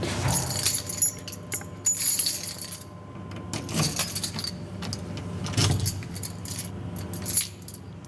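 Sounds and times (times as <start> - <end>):
bunch of keys jangling: 0.3 - 2.9, 3.6 - 5.0, 5.6 - 7.9.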